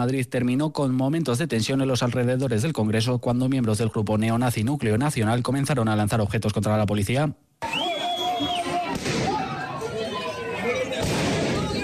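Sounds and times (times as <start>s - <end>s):
speech: 0.0s - 7.8s
noisy crowd shouting and talking loudly: 7.6s - 11.8s
police gunshots fired into the air: 8.8s - 9.6s, 10.9s - 11.8s.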